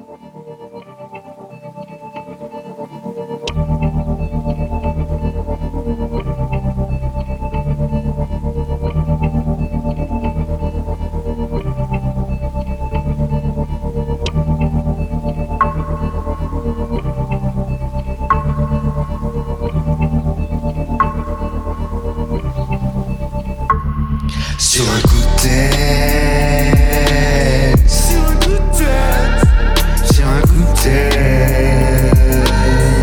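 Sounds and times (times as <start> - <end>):
layered synths heavily processed with effects: 3.1 - 33.0
driving bass line: 3.5 - 33.0.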